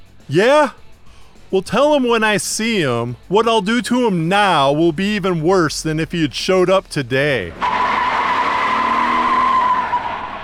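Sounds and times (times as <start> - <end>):
speech: 0.3 - 0.8, 1.5 - 7.7
car engine as the vehicle pulls away: 6.6 - 10.4
car tires screeching in a long skid: 7.4 - 10.4.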